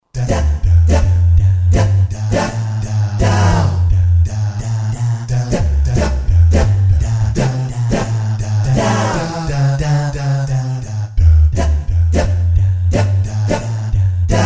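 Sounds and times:
Roland SR-JV80-13 Vocal Collection vocal sample: 0.0 - 14.4.

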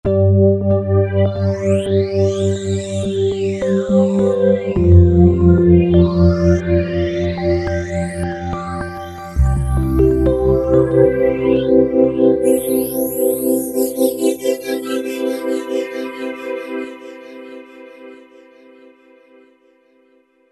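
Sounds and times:
ambient electric piano on Roland V-Synth: 0.1 - 19.6.

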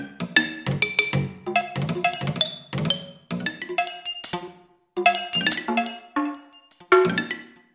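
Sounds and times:
percussion set: 0.3 - 7.4.

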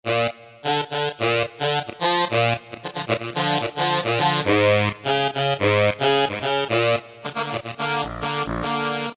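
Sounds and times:
saxophone: 0.1 - 9.1.

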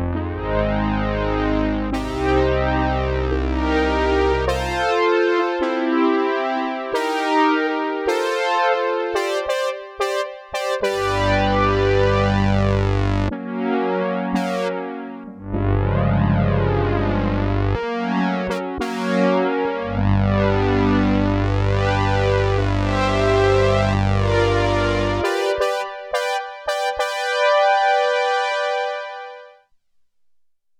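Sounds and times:
Siel DK 80 synthesizer ensemble sound: 0.2 - 5.1, 9.1 - 13.4, 14.0 - 29.4
Siel DK 80 synthesizer brass sound: 0.3 - 29.6.

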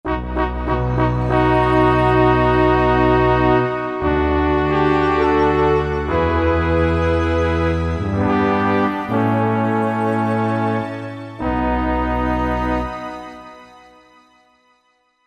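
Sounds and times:
SuisseHorn horn: 0.0 - 15.2.

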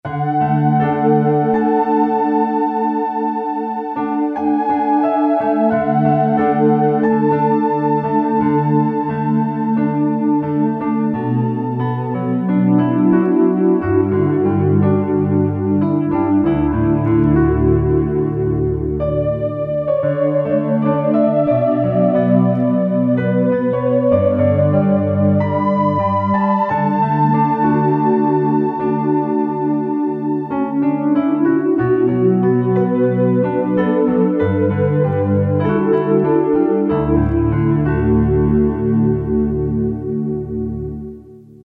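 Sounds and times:
Casio CT-370 keyboard piano tone: 0.0 - 41.6.

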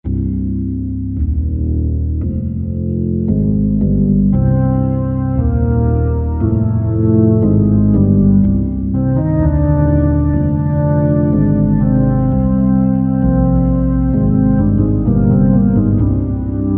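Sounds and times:
16 foot organ bass pedals with slow Leslie and medium distortion: 0.0 - 16.7.

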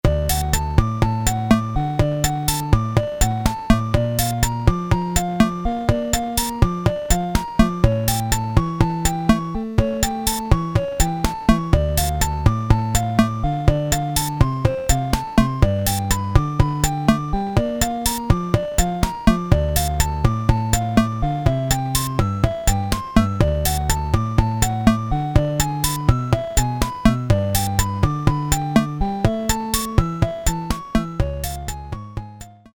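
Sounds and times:
Casio SK-1 bossa nova rhythm: 0.1 - 32.7.

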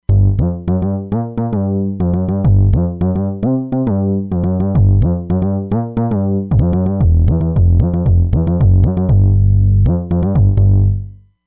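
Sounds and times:
Q Bass synthesizer bass on a Roland Fantom XR: 0.0 - 11.2.

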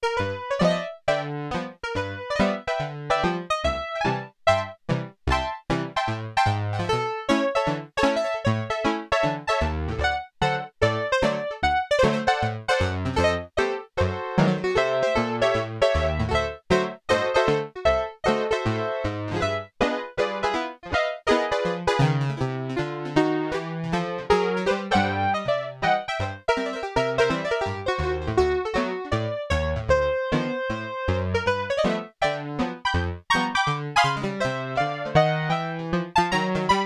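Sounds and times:
old time piano on a Siel DK 80 keyboard: 0.0 - 36.8.

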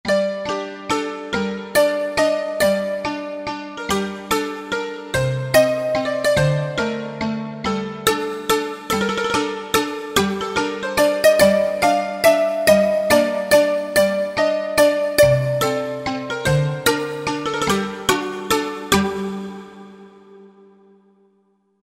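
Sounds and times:
synthesizer factory patch dulcimer: 0.0 - 21.2.

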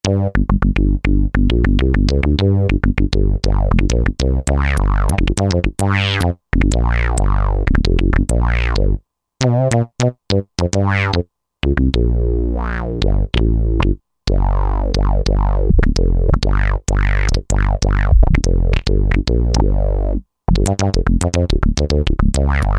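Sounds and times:
funk bass synthesizer factory patch: 0.0 - 22.7.

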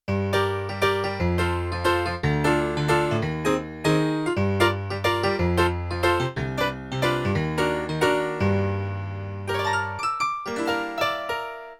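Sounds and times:
jazz piano performance on a sampler: 0.1 - 11.7.

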